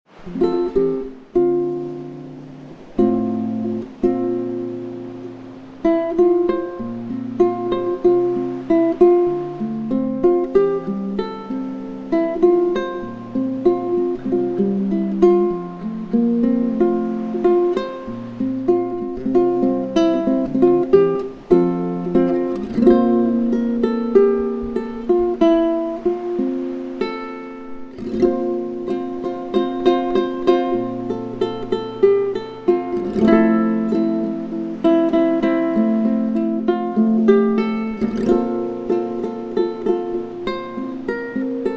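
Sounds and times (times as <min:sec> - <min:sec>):
relaxing Hawaiian ukulele background music: 0:00.1 - 0:41.7.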